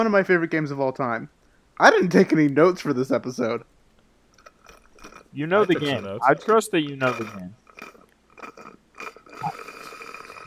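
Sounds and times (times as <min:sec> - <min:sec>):
speech: 0:00.0 - 0:03.7, 0:05.3 - 0:08.5
person sipping soda loudly: 0:04.4 - 0:05.3, 0:07.1 - 0:10.4.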